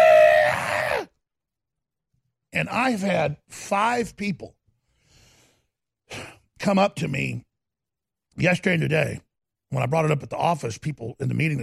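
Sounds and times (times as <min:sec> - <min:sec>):
single voice screaming imitating an angry crowd: 0:00.0 - 0:01.1
speech: 0:02.6 - 0:04.6, 0:06.1 - 0:07.5, 0:08.4 - 0:11.6.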